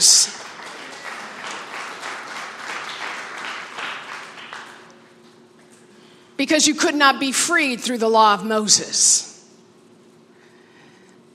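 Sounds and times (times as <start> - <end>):
audience applause in a large room: 0.0 - 4.9
speech: 6.4 - 9.3.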